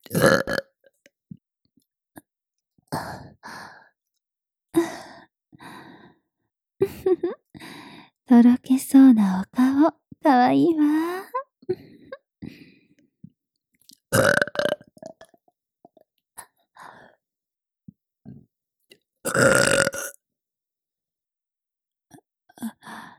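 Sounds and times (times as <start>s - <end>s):
woman burping: 0.0s - 0.7s, 14.2s - 15.3s, 19.3s - 20.2s
speech: 8.3s - 11.3s.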